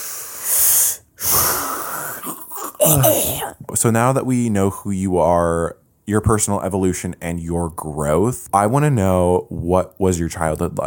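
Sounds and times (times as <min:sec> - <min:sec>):
deep breath: 0:00.0 - 0:02.3
speech: 0:02.8 - 0:10.8.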